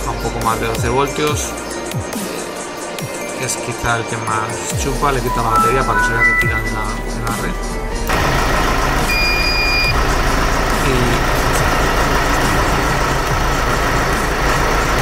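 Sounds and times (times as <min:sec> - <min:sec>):
speech: 0:00.2 - 0:02.4, 0:03.4 - 0:08.3
short high electronic tone: 0:05.1 - 0:07.3
car engine cranking, starting and idling: 0:05.1 - 0:14.9.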